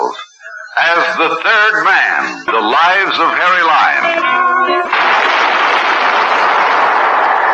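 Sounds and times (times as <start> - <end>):
speech: 0.1 - 5.1
gunshot in a sewer beneath a city: 4.9 - 7.4.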